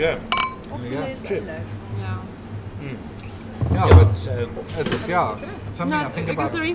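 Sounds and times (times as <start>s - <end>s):
speech: 0.0s - 6.7s
glasses clinking in a toast: 0.3s - 0.8s.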